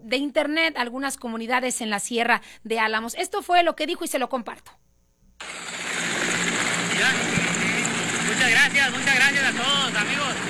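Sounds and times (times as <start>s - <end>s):
speech: 0.0s - 5.6s, 7.0s - 7.5s, 8.4s - 10.4s
helicopter rotor and engine roaring while landing: 5.4s - 10.4s.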